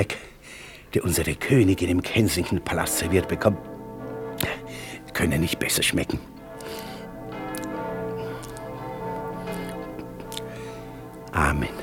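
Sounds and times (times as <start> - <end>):
speech: 0.0 - 0.3, 0.9 - 3.8, 5.2 - 6.4
church bells ringing in London: 1.0 - 11.8.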